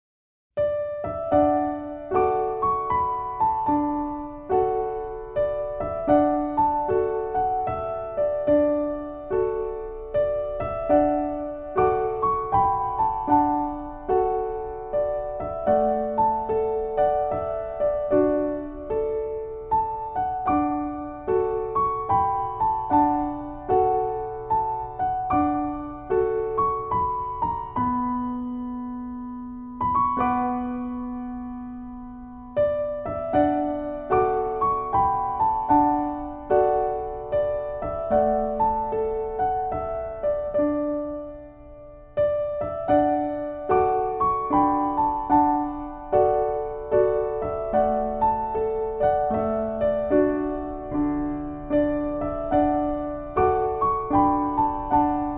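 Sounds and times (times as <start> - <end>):
Irish piano instrumental: 0.6 - 55.3.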